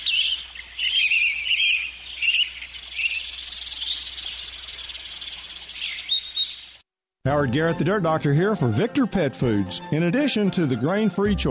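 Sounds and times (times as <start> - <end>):
dense chorus of birds chirping and twittering: 0.0 - 6.9
speech: 7.3 - 11.4.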